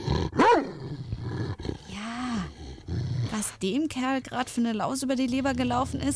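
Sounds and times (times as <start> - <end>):
dog snarling and growling angrily: 0.0 - 3.6, 5.2 - 6.1
speech: 3.6 - 6.1.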